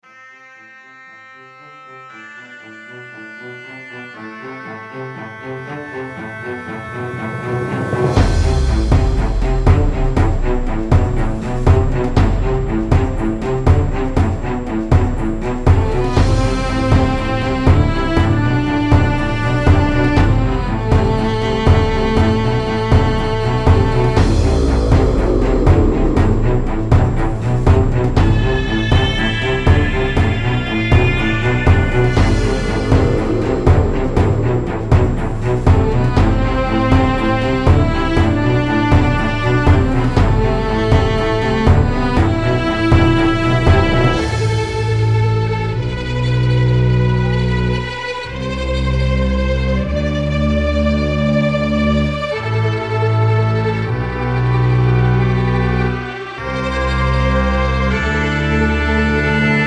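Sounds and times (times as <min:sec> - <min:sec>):
hectic epic adventure orchestral music: 0:01.4 - 0:59.6.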